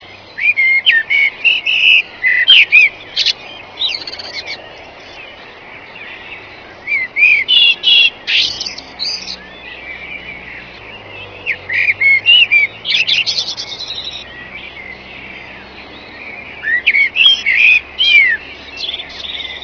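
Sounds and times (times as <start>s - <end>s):
blackbird singing: 0.0s - 19.6s.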